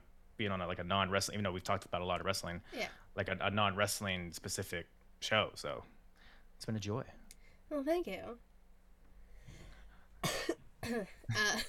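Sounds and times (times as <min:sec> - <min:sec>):
speech: 0:00.4 - 0:06.0, 0:06.6 - 0:08.5, 0:10.9 - 0:11.6
person coughing: 0:10.2 - 0:11.6.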